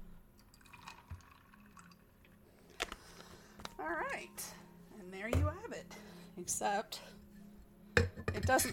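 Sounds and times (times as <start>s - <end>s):
grenadine syrup poured into a cocktail glass: 0.4s - 2.2s
soft drips of grenadine syrup: 0.4s - 2.4s
speech: 3.8s - 4.6s, 5.2s - 7.2s, 8.4s - 8.7s.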